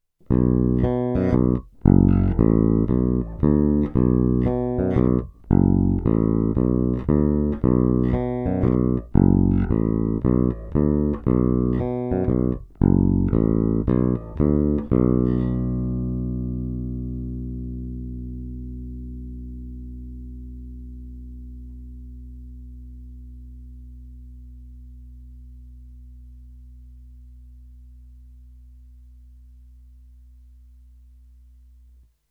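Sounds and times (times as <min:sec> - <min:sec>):
Fender Blacktop Precision Bass with bridge single-coil pickup: 0:00.2 - 0:32.0.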